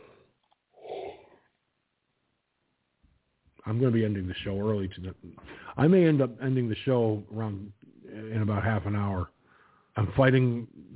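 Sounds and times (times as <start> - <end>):
person yawning: 0.8 - 1.4
speech: 3.6 - 9.4, 10.0 - 10.9.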